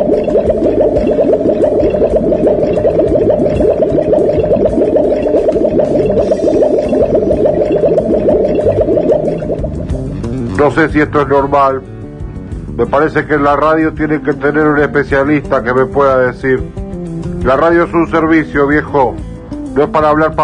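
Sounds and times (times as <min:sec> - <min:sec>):
water rushing and gurgling through house water pipes in Bursaco: 0:00.0 - 0:10.1
speech: 0:10.6 - 0:11.9, 0:12.8 - 0:16.8, 0:17.4 - 0:19.2, 0:19.8 - 0:20.4.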